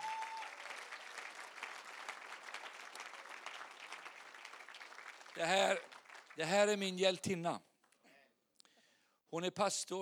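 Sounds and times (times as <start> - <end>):
audience applause: 0.0 - 6.8
speech: 5.4 - 7.7, 9.3 - 10.0.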